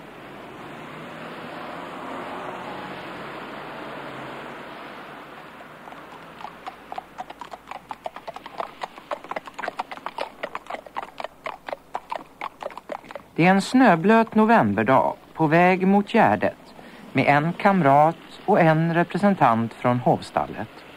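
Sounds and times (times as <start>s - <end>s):
rushing wet noise: 4.8s - 20.9s
horse hooves clip-clopping on a hard road on a wet snowy November day: 5.2s - 20.9s
speech: 13.4s - 16.6s, 17.2s - 20.9s.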